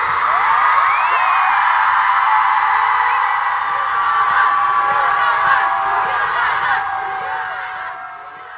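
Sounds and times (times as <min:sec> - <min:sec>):
large crowd shouting and cheering at a rally: 0:00.0 - 0:08.5.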